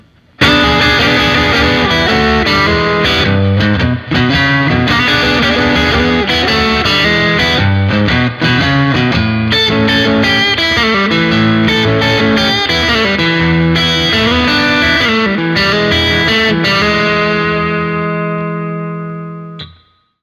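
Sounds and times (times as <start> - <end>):
guitar neck pickups: 0.0 - 20.1.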